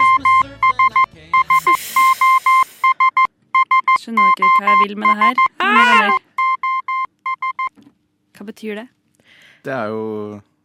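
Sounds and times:
electronic beeps like Morse code SOS: 0.0 - 7.7
speech: 4.7 - 6.2, 8.5 - 9.0, 9.6 - 10.5.

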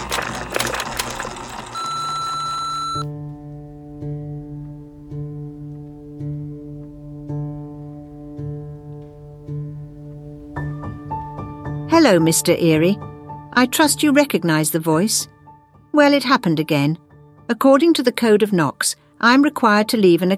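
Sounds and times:
crackly noise: 0.0 - 3.1
electronic answering machine beep: 0.0 - 3.1
speech: 12.0 - 15.4, 16.0 - 20.3.

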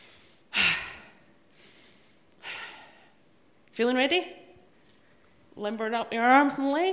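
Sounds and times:
loud deep breaths with long airy exhale: 0.0 - 3.2
speech: 3.8 - 4.4, 5.6 - 6.9.

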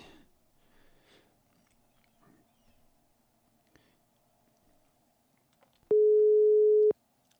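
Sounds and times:
telephone ringback tone on an outgoing call: 5.9 - 6.9.

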